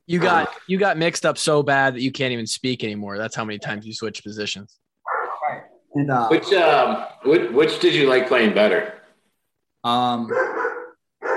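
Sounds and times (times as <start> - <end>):
speech: 0.1 - 4.8, 5.5 - 9.0, 9.8 - 10.5
German Shepherd barking: 5.0 - 5.7, 10.3 - 11.3.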